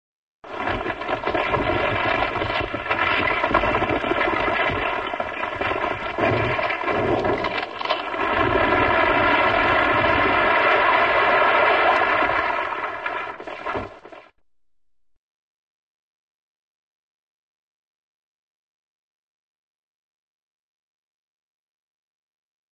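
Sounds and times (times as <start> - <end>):
building collapsing without explosion: 0.5 - 14.3.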